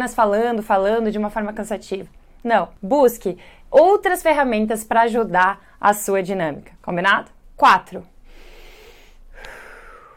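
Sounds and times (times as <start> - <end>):
speech: 0.0 - 8.1
person breathing in and out: 3.4 - 3.7, 8.2 - 10.1.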